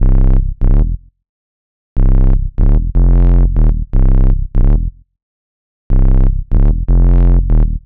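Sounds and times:
synthesizer bass in C minor: 0.0s - 1.0s, 2.0s - 5.0s, 5.9s - 7.8s.

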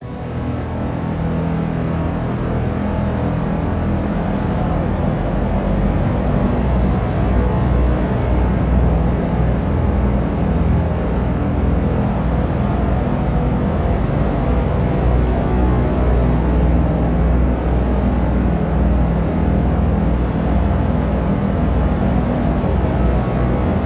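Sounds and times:
bass drone with thick reverb in E minor: 0.0s - 23.8s.

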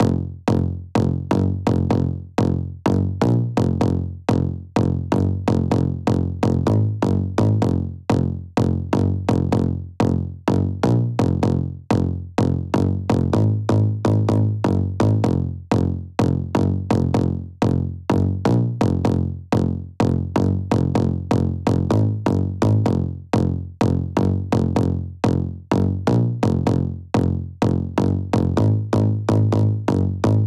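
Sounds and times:
synth bass in F: 0.0s - 30.4s.

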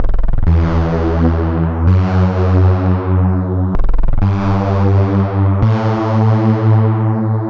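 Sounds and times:
bass loop in E: 0.0s - 7.4s.

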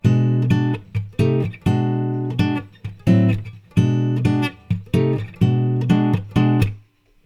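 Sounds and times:
rhythm guitar: 0.0s - 6.9s.

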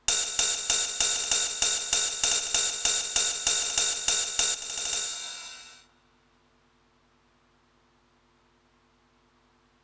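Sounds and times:
ride cymbal: 0.0s - 5.8s.

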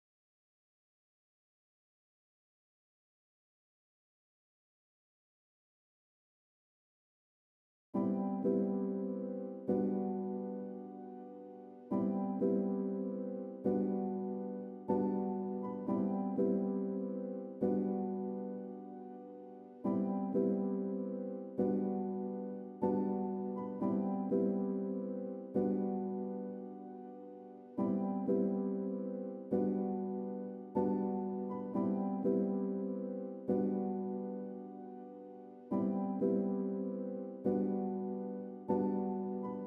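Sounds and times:
warm positive piano music in C major at 121 BPM: 8.0s - 39.6s.

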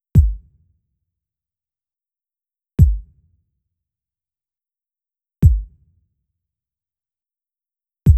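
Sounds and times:
kick drum at 91 BPM: 0.2s - 0.5s, 2.8s - 3.2s, 5.4s - 5.8s.

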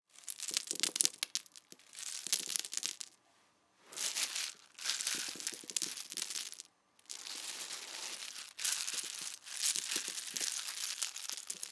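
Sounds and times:
honeycomb cereal drops: 0.1s - 3.2s, 3.9s - 11.7s.

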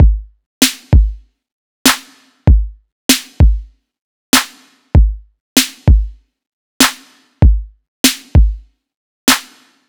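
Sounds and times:
drum loop: 0.0s - 1.2s, 1.9s - 3.7s, 4.4s - 6.2s, 6.8s - 8.7s.

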